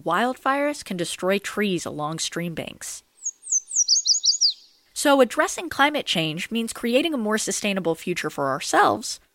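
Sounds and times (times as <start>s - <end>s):
speech: 0.0s - 3.1s, 5.0s - 9.2s
yellow warbler song of bright high slurred notes: 3.1s - 5.0s.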